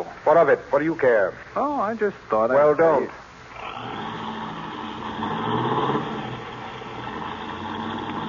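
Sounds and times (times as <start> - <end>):
speech: 0.0 - 3.2
car engine revving as car speeds away: 3.5 - 8.2.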